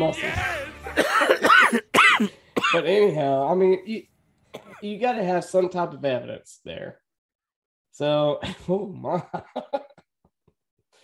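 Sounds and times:
speech: 0.0 - 1.5, 2.8 - 7.0, 8.0 - 9.9
person coughing: 0.2 - 2.9, 4.5 - 4.9.

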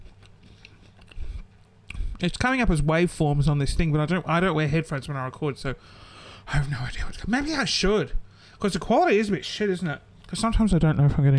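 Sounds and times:
person chewing food: 0.0 - 2.0
speech: 2.2 - 11.3.

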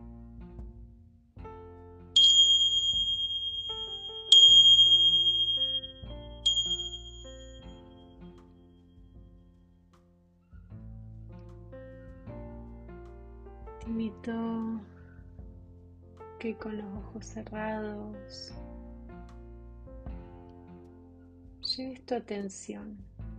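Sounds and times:
soft steady instrumental background: 0.0 - 22.2
bell strikes to start a meditation: 2.2 - 7.8
speech: 14.2 - 14.9, 16.4 - 18.6, 21.8 - 23.1.

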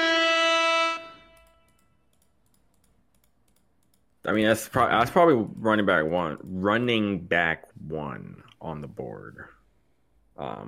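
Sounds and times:
loud steady brassy air horn blast: 0.0 - 1.7
speech: 4.3 - 9.6, 10.4 - 10.6.

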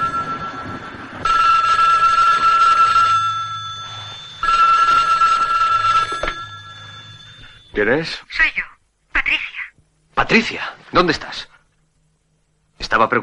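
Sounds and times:
telephone bell ringing with an incoming call: 0.0 - 7.8
speech: 7.8 - 8.7, 10.2 - 11.5, 12.9 - 13.2.

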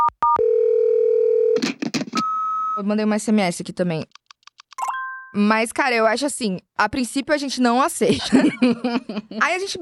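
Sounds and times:
telephone dial tone while placing a call: 0.2 - 1.6, 4.8 - 5.1
speech: 2.8 - 4.2, 5.3 - 9.8
telephone keypad beeps while a call is placed: 4.8 - 5.4
laughter: 8.1 - 9.6.

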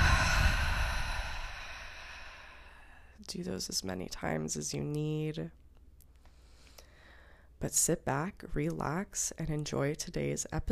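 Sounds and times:
deep inhale through the nose: 0.0 - 3.1, 6.3 - 7.5
long airy exhale through the mouth during a guided deep-breathing exercise: 0.0 - 3.1
speech: 3.3 - 5.6, 7.6 - 10.7.

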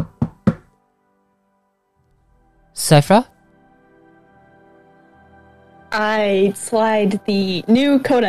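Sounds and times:
firm knocks on a wooden door: 0.0 - 0.7
speech: 2.9 - 3.3, 6.0 - 8.2.

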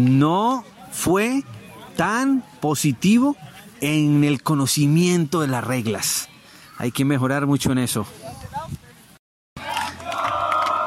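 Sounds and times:
speech: 0.0 - 8.4
group of people cheering and shouting in celebration: 9.6 - 10.8.

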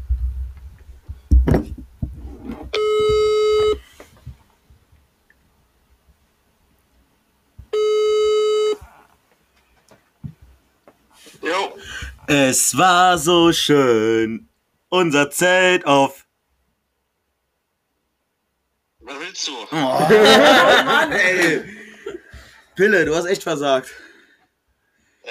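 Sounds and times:
electronic ringback tones from a mobile phone speaker: 2.8 - 3.8, 7.7 - 8.8
speech: 12.3 - 16.2, 19.4 - 21.8, 22.8 - 24.1
laughter: 19.7 - 22.4.

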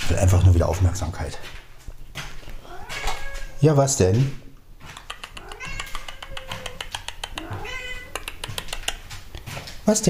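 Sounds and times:
speech: 0.1 - 1.6, 3.6 - 4.4, 9.9 - 10.0
cat meowing: 2.6 - 3.6, 5.4 - 8.3
sharp clicking or tapping: 4.1 - 9.8.

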